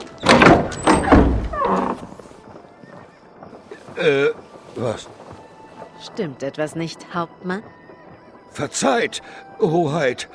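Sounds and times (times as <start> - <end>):
door being opened with heavy clunks and a scraping slide: 0.0 - 2.2
speech: 4.0 - 5.2, 6.0 - 7.8, 8.6 - 10.3.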